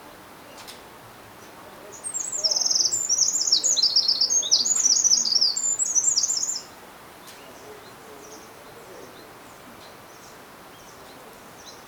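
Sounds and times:
faint background hiss: 0.0s - 11.8s
Eurasian wren Troglodytes troglodytes song: 2.0s - 6.7s.

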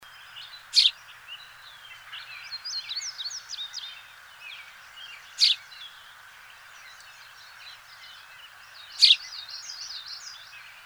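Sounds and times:
House sparrow Passer domesticus chirping: 0.2s - 10.8s
bird twittering and chattering: 2.0s - 10.6s.

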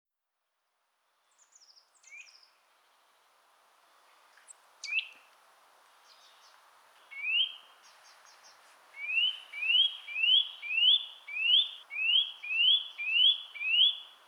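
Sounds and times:
Eurasian nuthatch Sitta europaea calling: 4.8s - 5.2s, 7.1s - 7.7s, 9.0s - 14.2s.

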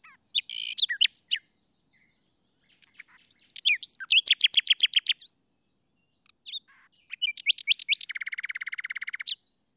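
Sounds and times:
Common nightingale Luscinia megarhynchos song: 0.0s - 9.7s.

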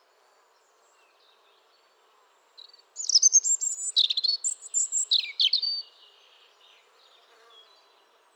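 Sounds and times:
European robin (Erithacus rubecula) singing a high tinkling phrase: 2.6s - 6.6s.

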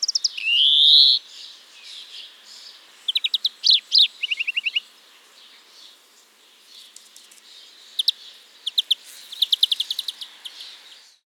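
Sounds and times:
European greenfinch fast chirping trills and twittering bursts: 0.0s - 1.2s, 3.1s - 4.8s, 8.0s - 10.7s
European greenfinch Chloris chloris singing: 0.0s - 11.2s.

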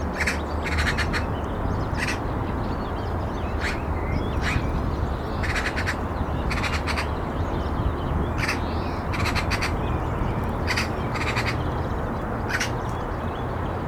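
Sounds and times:
low rumble of background noise: 0.0s - 13.8s
Eurasian magpie Pica pica giving harsh rattling chatter calls: 0.2s - 1.3s, 1.9s - 2.2s, 3.6s - 4.7s, 5.4s - 7.2s, 8.4s - 9.8s, 10.6s - 11.7s, 12.5s - 12.8s.

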